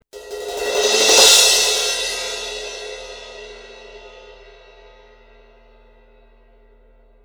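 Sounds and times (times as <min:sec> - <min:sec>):
Sabian 18 medium crash cymbal: 0:00.2 - 0:07.2.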